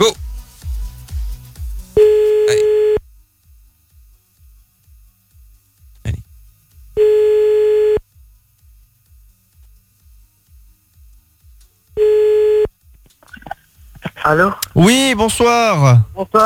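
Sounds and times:
speech: 0:00.0 - 0:00.2, 0:14.3 - 0:16.4
telephone ringback tone on a French line: 0:02.0 - 0:03.0, 0:07.0 - 0:08.0, 0:12.0 - 0:12.7.

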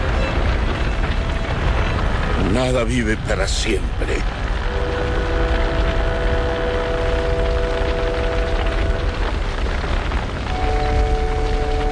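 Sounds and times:
ship burning and being consumed by fire: 0:00.0 - 0:11.8
speech: 0:02.5 - 0:04.4.

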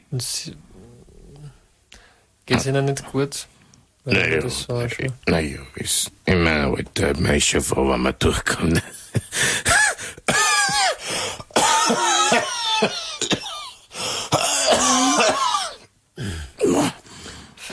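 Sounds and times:
speech: 0:00.1 - 0:00.7, 0:02.5 - 0:09.7
heavy raspy coughing from a person with a cold who smoked heavily: 0:09.0 - 0:17.0
strained voiced gasps and wheezy breaths: 0:09.3 - 0:12.8, 0:13.9 - 0:15.3, 0:16.2 - 0:17.7.

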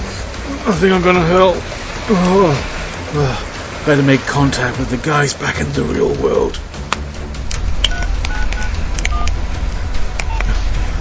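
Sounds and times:
steady low rumbling background: 0:00.0 - 0:10.9
speech: 0:00.6 - 0:06.7
sharp clicks: 0:06.9 - 0:09.4
telephone touch-tone dialing beeps: 0:07.9 - 0:09.4, 0:10.2 - 0:10.5.

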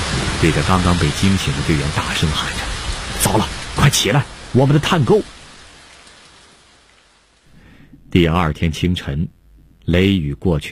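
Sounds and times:
heavy rain pouring down during a thunderstorm: 0:00.0 - 0:08.1
speech: 0:00.4 - 0:05.4, 0:08.1 - 0:10.7.

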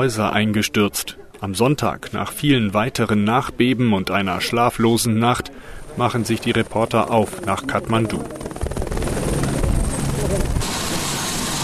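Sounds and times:
speech: 0:00.0 - 0:08.5
helicopter rotor and engine flying supplies down a valley in Nepal: 0:05.4 - 0:11.6.

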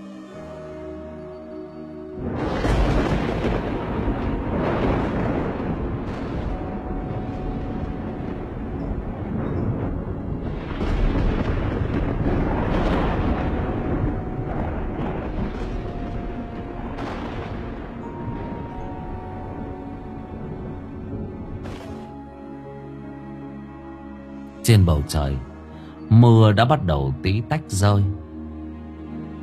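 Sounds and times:
thunder rolling through an overcast sky: 0:02.2 - 0:22.4
speech: 0:24.7 - 0:25.5, 0:26.1 - 0:28.2.

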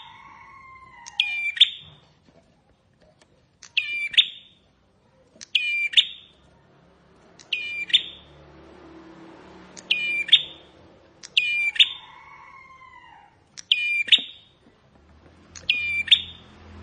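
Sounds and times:
bar-winged prinia strident chirping phrases: 0:01.1 - 0:01.9, 0:03.7 - 0:04.7, 0:05.4 - 0:06.4, 0:07.4 - 0:08.4, 0:09.7 - 0:12.1, 0:13.6 - 0:14.6, 0:15.5 - 0:16.7.

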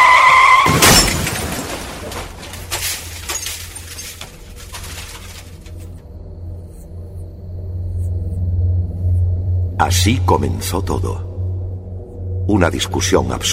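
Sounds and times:
car tire squeal on a road: 0:00.0 - 0:01.1
loud car crash impact on a road: 0:00.6 - 0:03.8
glass and debris clattering after a car crash: 0:00.7 - 0:06.0
low steady rumble: 0:03.8 - 0:13.5
speech: 0:09.9 - 0:11.3, 0:12.5 - 0:13.5.

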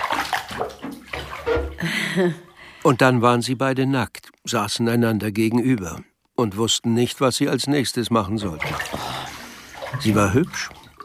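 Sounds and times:
water pouring into a bathtub as a bath is drawn: 0:00.0 - 0:02.3, 0:08.2 - 0:11.0
speech: 0:01.5 - 0:09.1, 0:09.9 - 0:10.8.

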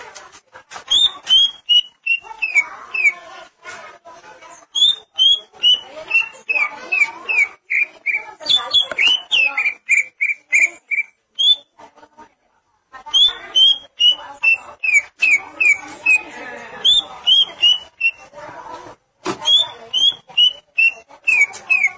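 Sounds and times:
greater green leafbird whistling and chirping: 0:00.9 - 0:03.1, 0:04.7 - 0:11.7, 0:13.2 - 0:16.2, 0:16.8 - 0:18.2, 0:19.4 - 0:21.9.

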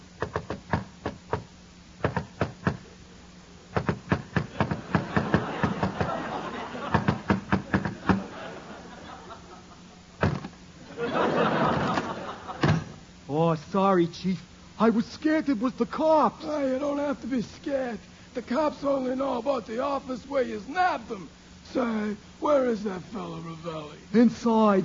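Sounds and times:
secret knock on a door: 0:00.2 - 0:02.8, 0:03.8 - 0:06.0, 0:06.9 - 0:08.2
laughter: 0:04.5 - 0:10.2, 0:10.8 - 0:13.0
speech: 0:13.6 - 0:24.8.

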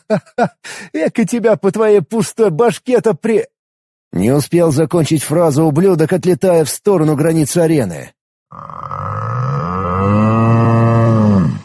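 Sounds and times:
speech: 0:00.1 - 0:03.5, 0:04.1 - 0:09.2, 0:10.0 - 0:10.4
bull bellowing: 0:08.5 - 0:11.6.

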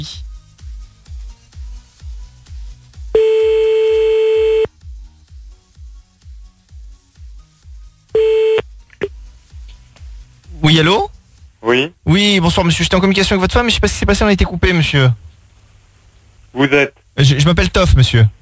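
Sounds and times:
speech: 0:00.0 - 0:00.3, 0:10.7 - 0:11.1, 0:11.8 - 0:15.3, 0:16.5 - 0:18.4
telephone line tones while calling someone back: 0:03.2 - 0:04.7, 0:08.2 - 0:08.6.

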